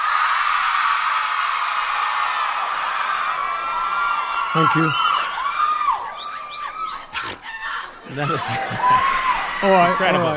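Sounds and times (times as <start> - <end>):
audience of girls screaming excitedly: 0.0 - 10.2
speech: 4.5 - 5.0, 8.1 - 10.3
laughter: 8.1 - 10.3.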